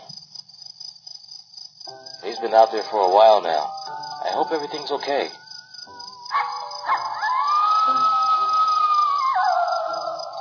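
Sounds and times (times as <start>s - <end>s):
speech: 2.4s - 5.4s
coyote howling: 6.1s - 10.4s.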